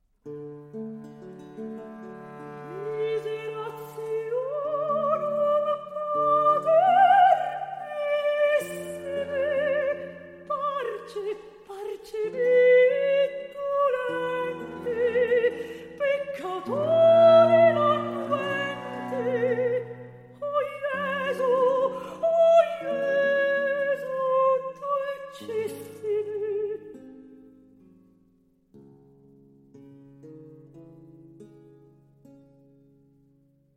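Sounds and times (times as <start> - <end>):
soprano singing recitative with two violins, viola and bass: 2.6 - 27.0.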